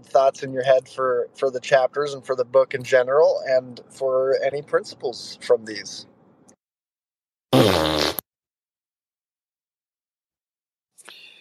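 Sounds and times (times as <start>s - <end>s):
speech: 0.0s - 6.1s
loud buzzy fart noise: 7.5s - 8.3s.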